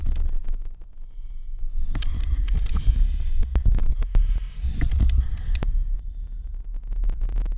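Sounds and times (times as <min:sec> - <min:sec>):
noise loop: 0:00.0 - 0:07.5.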